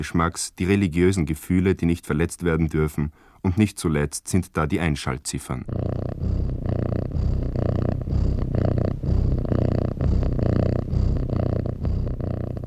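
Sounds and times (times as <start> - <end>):
speech: 0.0 - 6.6
cat purring: 5.5 - 12.6.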